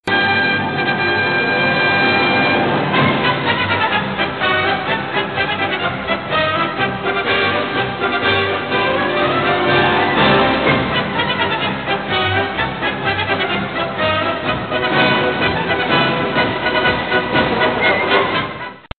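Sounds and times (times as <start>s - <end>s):
circus tone: 0.0s - 18.9s.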